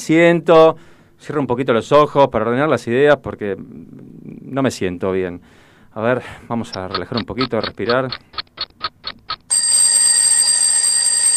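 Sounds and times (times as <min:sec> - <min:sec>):
speech: 0:00.0 - 0:08.9
quick ticking or beeping pulses: 0:06.6 - 0:09.8
high-pitched alarm clock ringing: 0:09.5 - 0:11.3.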